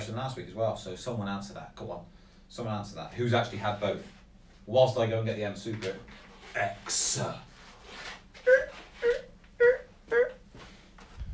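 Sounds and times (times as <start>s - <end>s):
speech: 0.2s - 7.5s
person imitating a creaking door opening: 8.4s - 10.4s.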